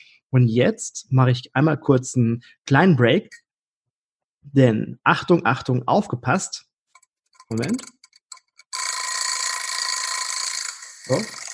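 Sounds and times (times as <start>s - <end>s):
speech: 0.3s - 3.4s, 4.4s - 6.7s, 7.5s - 8.0s, 11.1s - 11.4s
kitchen egg timer ticking: 6.9s - 11.5s.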